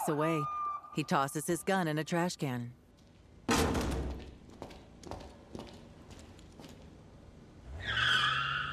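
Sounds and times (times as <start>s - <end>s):
speech: 0.0s - 2.8s
knocks and thuds: 3.5s - 4.4s
police car tires screeching to a stop: 7.6s - 8.7s.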